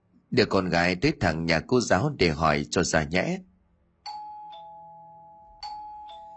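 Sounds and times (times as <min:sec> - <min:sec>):
speech: 0:00.3 - 0:03.5
doorbell two-tone ding-dong chime: 0:04.1 - 0:06.3.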